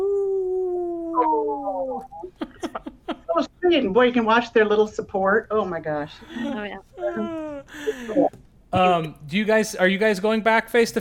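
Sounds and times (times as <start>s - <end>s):
dog howling: 0.0s - 2.3s
speech: 1.2s - 11.0s.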